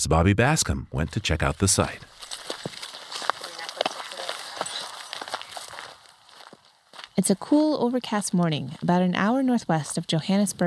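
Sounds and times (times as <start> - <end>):
speech: 0.0 - 2.8, 7.2 - 10.6
footsteps through dry grass in a farmer's field in South Africa: 2.1 - 7.2.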